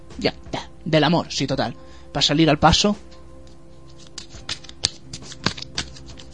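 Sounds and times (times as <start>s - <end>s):
speech: 0.2s - 3.1s
deck of tarot cards being shuffled: 3.5s - 6.3s.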